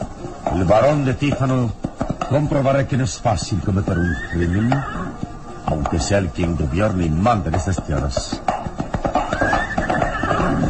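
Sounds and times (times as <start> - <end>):
galloping horse hooves: 0.0 - 10.6
speech: 0.5 - 8.5
horse whinnying loudly in a dramatized scene: 3.8 - 5.3, 9.0 - 10.6.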